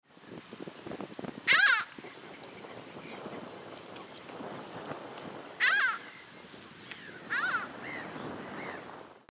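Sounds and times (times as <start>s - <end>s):
Mediterranean gull calling: 1.5s - 2.0s, 5.6s - 6.4s, 7.0s - 9.0s.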